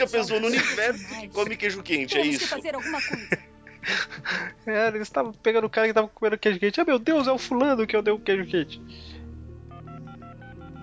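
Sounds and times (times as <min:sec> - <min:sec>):
laughter: 0:00.0 - 0:04.4
speech: 0:00.0 - 0:09.2
telephone keypad dual-tone dialing beeps: 0:09.8 - 0:10.8.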